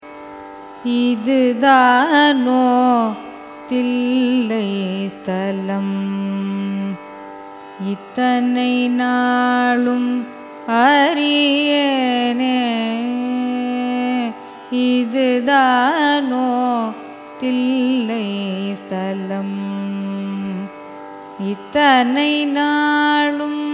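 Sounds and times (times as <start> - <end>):
carnatic raga music: 0.0 - 23.7.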